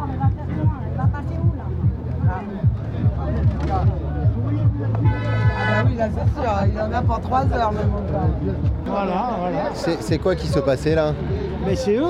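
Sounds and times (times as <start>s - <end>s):
crowd murmuring: 0.0s - 12.0s
people chatting: 0.0s - 12.0s
truck horns honking at a roadblock in an outdoor traffic jam: 5.0s - 6.1s
speech: 6.0s - 12.0s.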